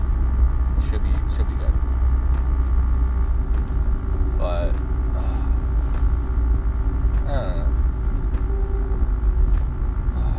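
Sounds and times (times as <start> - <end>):
car driving on road in light traffic heard from inside the cabin: 0.0 - 10.3
speech: 0.8 - 2.5.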